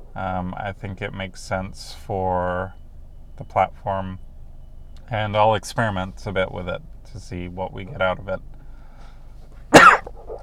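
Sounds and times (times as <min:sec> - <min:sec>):
speech: 0:00.2 - 0:02.8, 0:03.4 - 0:04.3, 0:05.0 - 0:08.5
single sharp cough: 0:09.8 - 0:10.4.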